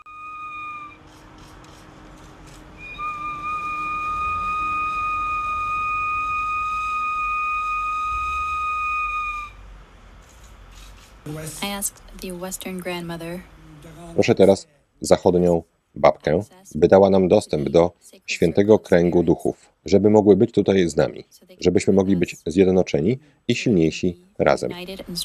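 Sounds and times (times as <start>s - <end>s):
sacred bone whistle blown in ceremony: 0.0s - 1.1s, 2.8s - 9.6s
low hum: 0.2s - 25.2s
speech: 11.3s - 25.2s.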